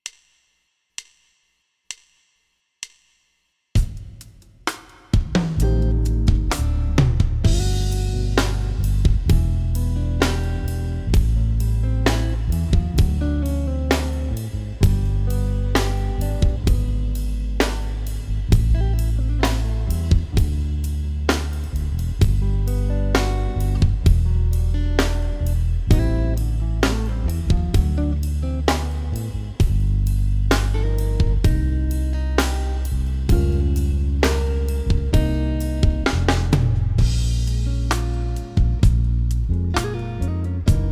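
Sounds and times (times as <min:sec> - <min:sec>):
smooth jazz piano ballad: 0:05.6 - 0:40.8.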